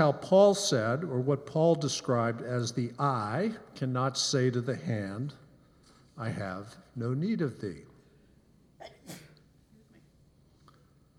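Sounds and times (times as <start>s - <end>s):
speech: 0.0s - 5.4s, 6.2s - 7.9s, 8.8s - 9.2s
sneeze: 8.8s - 10.1s.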